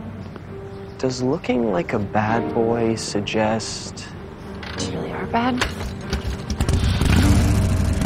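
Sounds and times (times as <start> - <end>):
speech: 1.0 - 4.2, 4.8 - 5.9
motorcycle riding away: 6.5 - 8.0.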